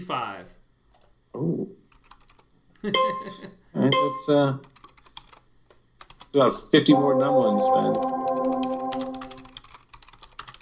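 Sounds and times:
speech: 0.0 - 0.6, 1.3 - 1.8, 2.8 - 4.7, 6.3 - 8.6
typing on a computer keyboard: 1.9 - 2.5, 4.6 - 6.4, 7.2 - 10.6.

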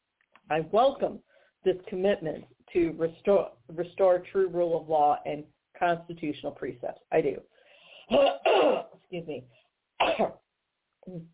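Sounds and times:
speech: 0.5 - 7.5, 8.1 - 10.4, 11.1 - 11.3
person coughing: 8.1 - 9.0, 10.0 - 10.4
soft throaty cough or throat clearing: 8.1 - 9.0.

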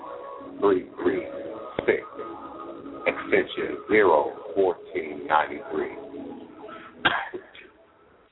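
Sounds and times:
speech: 0.6 - 2.1, 3.3 - 6.0
sharp harsh coughs: 3.1 - 3.4, 7.0 - 7.6
faint breathy vocal sounds: 6.5 - 7.7.

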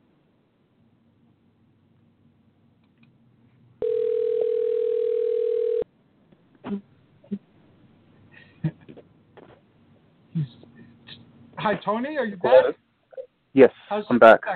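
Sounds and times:
faint clicks and phone line noises: 2.8 - 3.2
phone dial tone: 3.8 - 5.8
speech: 11.7 - 12.8, 13.6 - 14.5.

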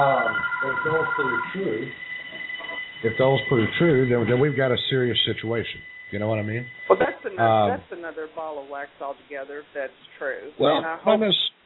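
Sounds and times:
speech: 0.0 - 2.1, 3.0 - 11.5
office telephone ringing: 0.0 - 9.2.

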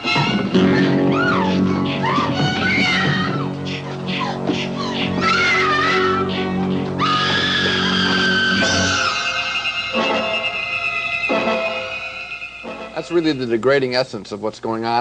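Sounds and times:
sustained shrill tones: 0.2 - 13.7
woman screaming in terror: 0.7 - 3.5, 7.0 - 9.3
speech: 13.1 - 15.0.

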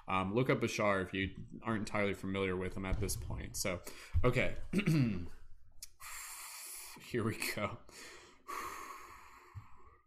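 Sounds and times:
speech: 0.1 - 5.4, 7.0 - 8.6
person breathing in and exhaling deeply: 3.8 - 4.2, 5.9 - 7.0, 7.8 - 10.0.

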